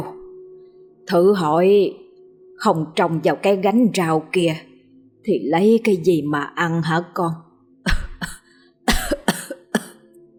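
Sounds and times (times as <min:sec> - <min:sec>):
speech: 0:01.1 - 0:02.0, 0:02.6 - 0:07.4
old woman coughing a long fit: 0:07.9 - 0:10.0.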